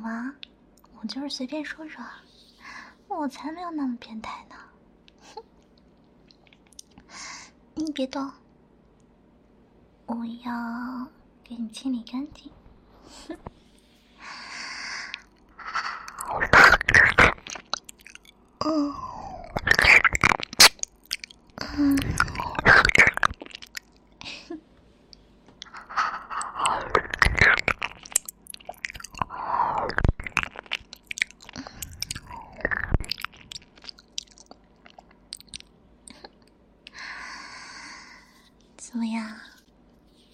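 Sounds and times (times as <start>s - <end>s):
speech: 0.3s - 2.4s, 3.1s - 5.5s, 7.2s - 8.4s, 10.1s - 13.5s
chewing and crunching newly bought candy: 15.0s - 24.3s, 25.6s - 37.0s.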